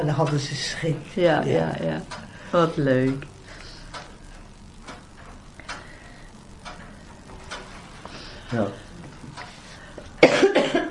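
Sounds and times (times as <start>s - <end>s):
speech: 0.0s - 3.4s, 8.5s - 8.8s
person coughing close to the microphone: 10.2s - 10.8s.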